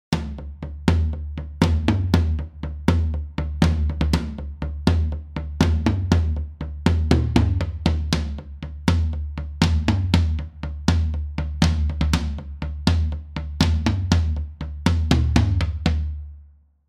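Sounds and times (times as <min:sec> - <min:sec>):
toms with 5 kHz added: 0:00.0 - 0:16.3.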